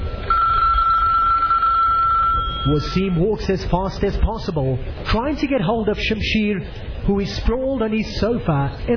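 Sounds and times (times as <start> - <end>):
telephone ringing with a high electronic tone: 0.0 - 3.4
speech: 2.6 - 8.9.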